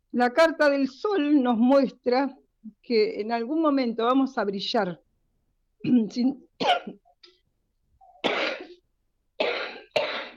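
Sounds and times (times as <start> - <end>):
speech: 0.2 - 5.0, 5.8 - 7.0
harsh coughing fit: 5.8 - 7.1, 8.2 - 8.8, 9.4 - 10.3.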